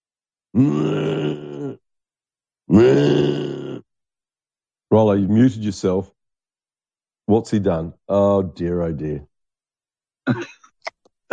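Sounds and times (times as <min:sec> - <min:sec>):
speech: 0:00.5 - 0:01.4, 0:04.9 - 0:06.2, 0:07.3 - 0:09.3, 0:10.3 - 0:10.6
person snoring: 0:00.6 - 0:01.8, 0:02.7 - 0:03.8.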